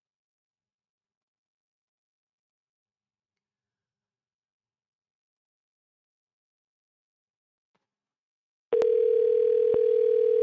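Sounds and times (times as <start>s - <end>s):
telephone dial tone on a call attempt: 8.8s - 10.4s.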